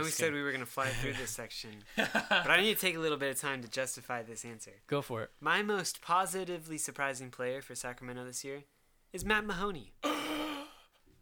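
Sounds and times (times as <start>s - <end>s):
speech: 0.0s - 10.4s
person gasping in surprise: 10.0s - 11.0s.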